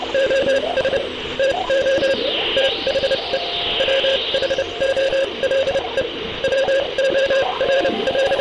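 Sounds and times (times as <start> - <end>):
Morse code beeps in short and long bursts: 0.1 - 8.3
hissing radio static: 0.2 - 8.3
whistling tones sweeping up and down through radio noise: 1.8 - 6.0.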